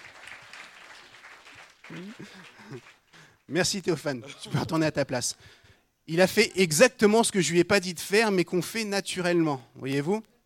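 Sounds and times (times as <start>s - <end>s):
crowd applauding: 0.0s - 3.5s
speech: 1.9s - 10.3s.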